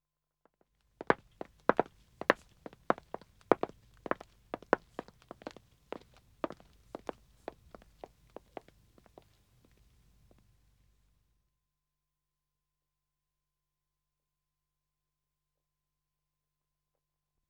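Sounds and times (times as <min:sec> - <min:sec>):
man walking on wood in dead acoustic: 0:01.0 - 0:09.3.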